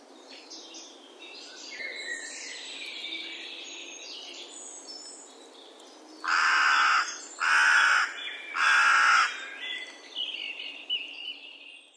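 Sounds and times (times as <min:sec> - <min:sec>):
carrion crow Corvus corone cawing: 0:06.3 - 0:09.5.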